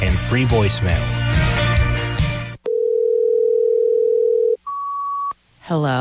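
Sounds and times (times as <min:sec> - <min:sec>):
short burst of loud music: 0:00.0 - 0:02.6
speech: 0:00.2 - 0:01.5, 0:05.7 - 0:05.9
steady electronic telephone ringing tone of an unanswered call: 0:02.7 - 0:05.2.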